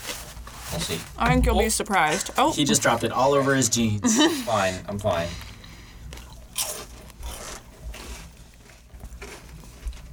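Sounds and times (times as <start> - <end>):
speech: 0.7 - 5.5
crunchy food being bitten and chewed: 6.0 - 10.1.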